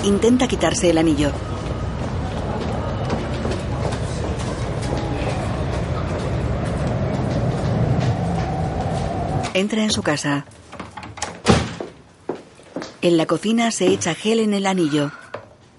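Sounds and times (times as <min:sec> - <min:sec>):
speech: 0:00.0 - 0:01.7, 0:09.6 - 0:10.6, 0:13.0 - 0:15.2
metro train rumbling through an underground station: 0:00.0 - 0:10.6
metro train rail clatter: 0:01.4 - 0:11.3.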